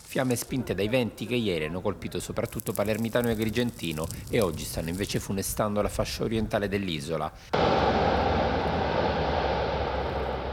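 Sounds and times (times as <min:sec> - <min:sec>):
speech: 0:00.1 - 0:08.2
firefighting water bomber aircraft engine droning overhead: 0:07.6 - 0:10.5.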